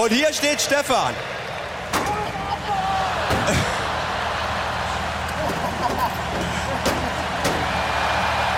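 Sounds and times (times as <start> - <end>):
speech: 0.0 - 1.5
stock car engines roaring: 0.0 - 8.5
laughter: 2.1 - 8.5
sharp metallic bangs of stock cars ramming into each other in a crash challenge: 3.2 - 3.9, 5.2 - 8.0.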